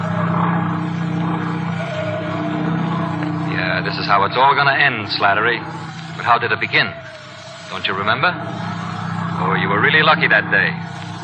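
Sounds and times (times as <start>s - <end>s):
small airplane propeller engine droning in flight: 0.0s - 11.2s
speech: 3.8s - 8.7s, 9.5s - 11.0s.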